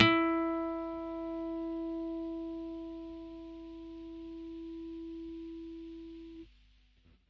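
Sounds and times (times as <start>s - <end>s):
acoustic guitar harmonics at the A7 fret: 0.0s - 5.0s.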